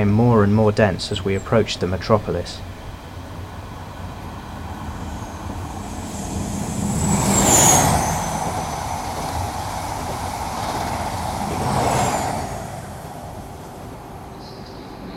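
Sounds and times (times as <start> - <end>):
speech: 0.0 - 2.7
train rumbling along the tracks of a main line: 0.0 - 15.1
thin metallic squeals: 4.8 - 13.0.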